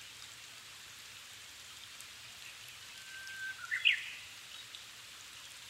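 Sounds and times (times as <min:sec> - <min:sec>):
Japanese thrush whistled song phrase in the evening at 270 m altitude: 0:03.0 - 0:04.2.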